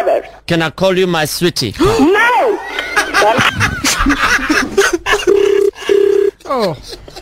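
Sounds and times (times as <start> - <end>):
speech: 0.1 - 5.0, 6.5 - 7.0
burst of laughter: 2.6 - 7.2
phone ring tones: 5.2 - 6.4.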